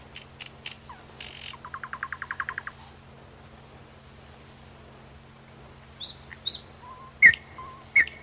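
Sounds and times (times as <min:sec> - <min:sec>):
nightingale song: 0:00.0 - 0:03.0, 0:05.9 - 0:08.2.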